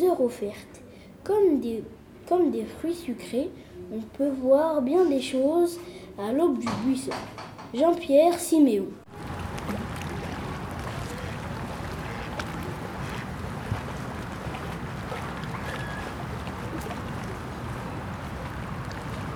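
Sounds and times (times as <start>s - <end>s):
wind: 0.0s - 19.3s
speech: 0.1s - 9.0s
small fishing boat motor rumble: 9.1s - 19.3s
splashing water: 9.1s - 19.3s.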